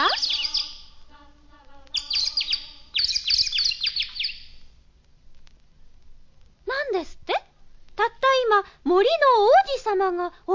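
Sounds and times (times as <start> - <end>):
small birds chirping in a forest: 0.0 - 1.0, 1.6 - 4.7
faint steady hum: 0.0 - 10.5
speech: 9.9 - 10.5.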